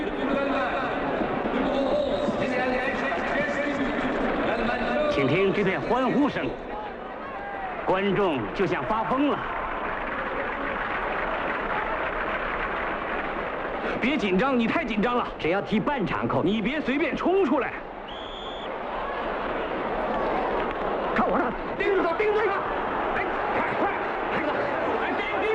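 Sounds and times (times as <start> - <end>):
dense wash of shouting voices: 0.0 - 13.6, 17.5 - 25.5
packed football stadium crowd roaring and cheering after a goal: 0.0 - 25.5.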